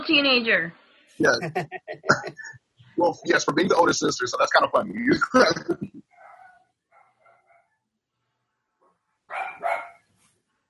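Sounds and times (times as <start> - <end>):
speech: 0.1 - 6.0
laughter: 1.2 - 6.0
dogs barking: 6.1 - 7.7, 9.3 - 10.1.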